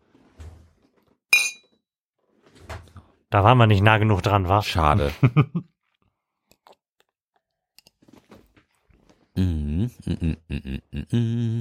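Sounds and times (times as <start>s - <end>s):
glasses clinking in a toast: 1.3s - 1.7s
speech: 3.3s - 5.8s, 9.9s - 11.5s
laughter: 5.1s - 5.7s, 9.4s - 11.5s.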